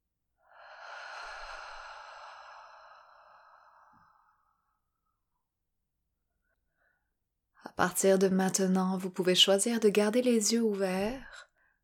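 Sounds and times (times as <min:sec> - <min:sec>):
long soft breath out through the open mouth during a guided breathing exercise: 0:00.5 - 0:04.5
speech: 0:07.8 - 0:11.5.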